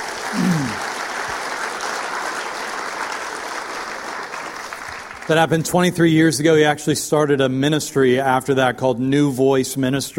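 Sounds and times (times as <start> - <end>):
audience applause: 0.0 - 6.0
low voice murmur: 0.3 - 0.8
speech: 5.3 - 10.1.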